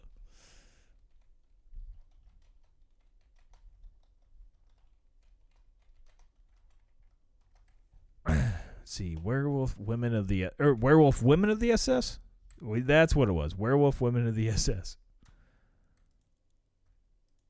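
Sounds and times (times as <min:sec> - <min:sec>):
faint typing on a computer keyboard: 0:00.9 - 0:08.2, 0:15.2 - 0:17.4
speech: 0:08.9 - 0:15.0.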